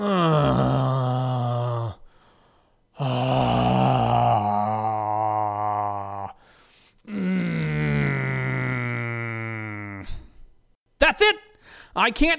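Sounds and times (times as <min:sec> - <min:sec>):
man moaning and groaning: 0:00.0 - 0:02.0, 0:03.0 - 0:06.4, 0:07.1 - 0:10.4
speech: 0:12.0 - 0:12.3.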